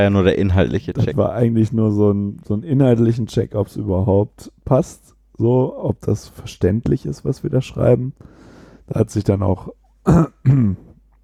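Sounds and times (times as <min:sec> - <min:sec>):
speech: 0:00.0 - 0:10.8
throat clearing: 0:10.1 - 0:11.0.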